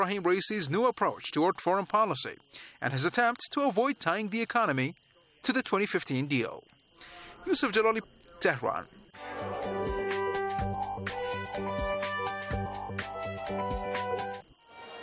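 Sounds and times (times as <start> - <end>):
speech: 0.0 - 10.2
rhythmic music: 9.2 - 14.4.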